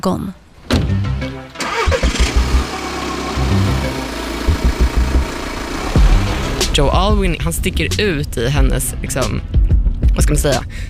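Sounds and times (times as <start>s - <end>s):
speech: 0.0s - 0.4s, 6.8s - 9.5s, 10.2s - 10.8s
car engine starting: 0.9s - 8.3s
car engine running with a low pulsing rumble: 1.4s - 10.8s.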